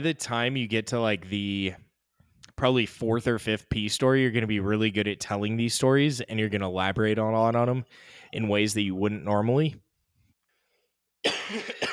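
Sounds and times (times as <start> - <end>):
speech: 0.0 - 1.8, 2.6 - 9.8
person coughing: 11.2 - 11.9.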